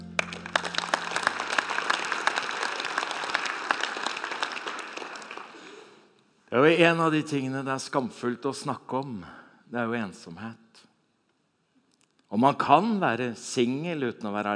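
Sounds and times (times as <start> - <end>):
crowd applauding with many hands clapping: 0.0 - 6.0
speech: 6.5 - 10.9, 12.3 - 14.5.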